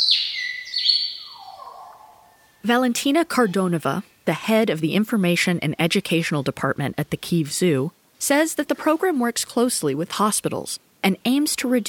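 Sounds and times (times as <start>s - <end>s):
white-rumped shama singing: 0.0s - 2.6s
speech: 2.6s - 11.8s.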